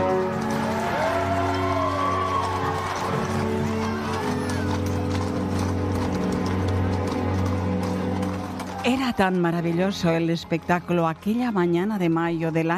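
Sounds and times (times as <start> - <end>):
horse hooves clip-clopping: 0.0 - 12.7
speech: 8.9 - 12.7.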